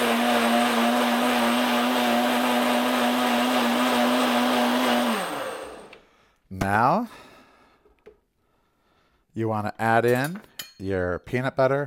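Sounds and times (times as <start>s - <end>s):
vacuum blender running on high speed: 0.0s - 6.0s
speech: 6.6s - 7.2s, 9.4s - 11.8s.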